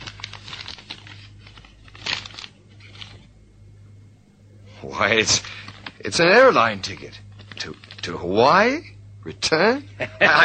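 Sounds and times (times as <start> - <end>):
paper envelope being opened: 0.0 - 3.3, 5.1 - 8.2
paper envelope tearing: 0.0 - 3.3, 6.8 - 8.2
speech: 4.8 - 10.4
laughter: 10.0 - 10.4.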